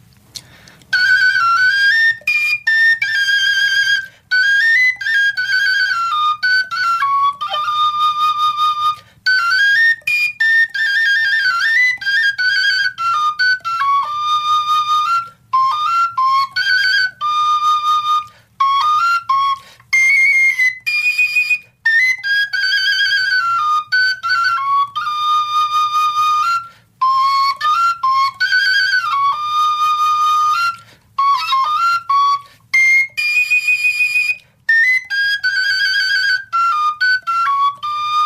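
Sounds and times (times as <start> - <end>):
short breaths of fujara player: 0.3 - 0.9
Slovak fujara overtone flute playing folk ballad melody: 0.3 - 38.2.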